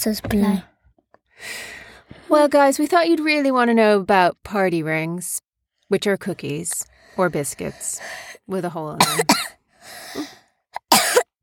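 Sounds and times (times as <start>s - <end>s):
speech: 0.0s - 0.7s, 1.4s - 10.4s
person coughing: 9.0s - 9.5s, 10.8s - 11.3s.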